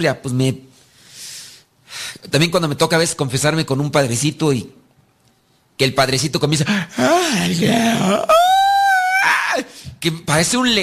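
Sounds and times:
speech: 0.0s - 0.7s, 2.2s - 4.8s, 5.8s - 8.4s, 9.6s - 10.8s
person imitating a loud exaggerated yawn: 6.9s - 9.0s.

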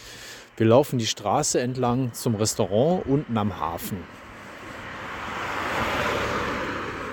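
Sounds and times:
speech: 0.6s - 4.2s
car passing by on a street: 3.9s - 7.1s.

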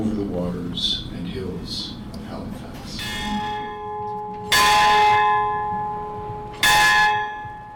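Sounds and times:
speech: 0.0s - 3.3s
faint outdoor ambience: 2.6s - 7.7s
large campus bell in Halifax ringing: 3.0s - 7.7s.

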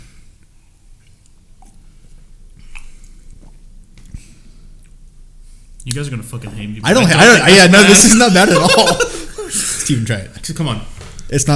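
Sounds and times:
person sipping a drink: 0.3s - 5.1s
speech: 5.9s - 11.5s
laughter: 6.9s - 10.1s.

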